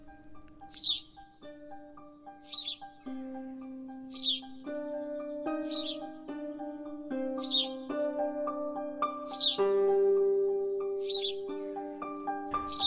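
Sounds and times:
distressed sparrow with a broken wing chirping: 0:00.0 - 0:01.4, 0:02.2 - 0:03.1, 0:04.1 - 0:04.6, 0:05.5 - 0:06.2, 0:07.4 - 0:07.8, 0:09.3 - 0:09.8, 0:11.0 - 0:12.8
soft sustained musical tones: 0:00.0 - 0:12.8.

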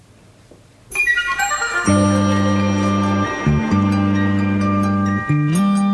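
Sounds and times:
chiming bell-like melody notes: 0:00.9 - 0:05.9
upbeat instrumental theme tune of an animated television series: 0:00.9 - 0:05.9
sustained bass chords: 0:01.6 - 0:05.9.

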